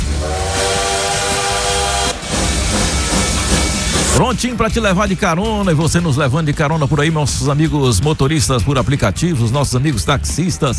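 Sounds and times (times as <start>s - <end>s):
bullet train sound effect horn-like whistle: 0.0s - 4.2s
bullet train sound effect roaring hissing rush of motion: 0.0s - 7.5s
speech: 4.2s - 10.7s.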